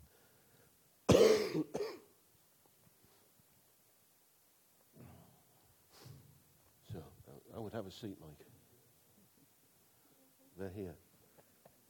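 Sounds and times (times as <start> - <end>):
person coughing: 1.1 - 2.1
speech: 1.5 - 1.8, 7.6 - 8.5, 10.6 - 11.1
faint soft sounds: 2.3 - 11.8.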